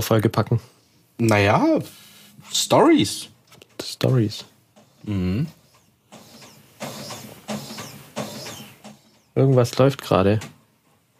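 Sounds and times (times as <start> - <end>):
speech: 0.0 - 5.6, 9.4 - 10.6
printer motor whirring and clunking through a self-cleaning cycle: 4.0 - 10.7.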